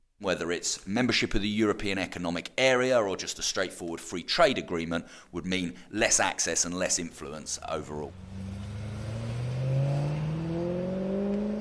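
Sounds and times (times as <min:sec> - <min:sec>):
speech: 0:00.2 - 0:08.4
car engine accelerating: 0:07.9 - 0:11.5.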